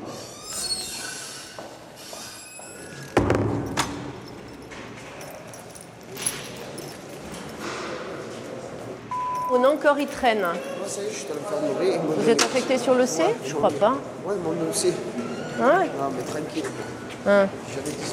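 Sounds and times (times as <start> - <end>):
prison door slamming: 3.2 - 4.2
speech: 9.6 - 18.1.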